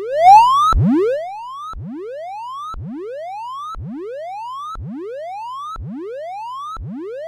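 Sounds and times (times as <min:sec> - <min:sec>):
1kHz test tone: 0:00.1 - 0:01.2.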